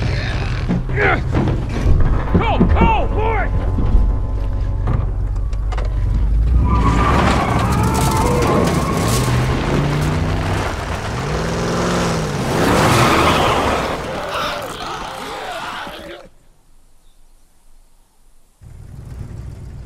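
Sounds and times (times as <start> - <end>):
truck engine rumbling while driving: 0.0 - 16.2
speech: 1.0 - 1.4
shouting: 7.3 - 9.0, 13.0 - 16.3.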